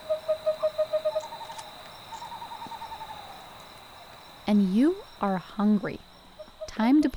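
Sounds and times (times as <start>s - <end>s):
owl hooting at dusk along the Verde River: 0.0s - 6.9s
high-pitched drone of night crickets at dusk along the Verde River: 0.0s - 7.1s
speech: 4.5s - 6.1s, 6.8s - 7.1s.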